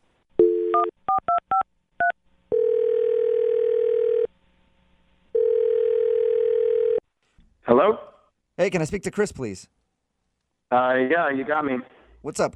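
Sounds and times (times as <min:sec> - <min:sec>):
telephone dial tone: 0:00.4 - 0:00.9, 0:02.5 - 0:04.3, 0:05.4 - 0:07.0
speech: 0:07.8 - 0:09.8, 0:10.7 - 0:12.5.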